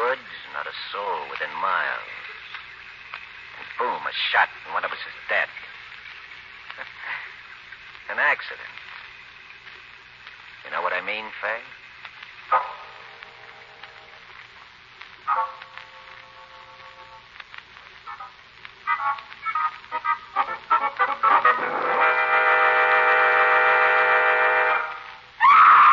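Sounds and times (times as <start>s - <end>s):
steady hum: 0.0s - 25.9s
speech: 0.8s - 2.2s, 3.8s - 5.7s, 8.1s - 8.8s, 11.0s - 11.8s
woman screaming in the woods: 25.4s - 25.9s.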